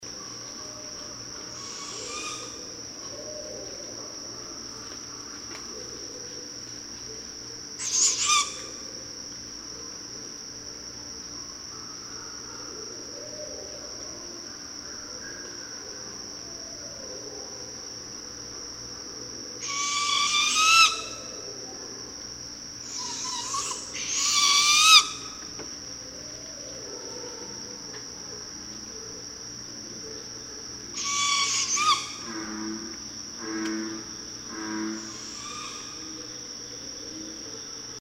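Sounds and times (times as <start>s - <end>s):
juvenile barred owl calling: 1.5s - 3.8s, 7.8s - 8.8s, 19.6s - 21.5s, 22.8s - 25.4s, 30.9s - 32.8s, 33.4s - 36.3s.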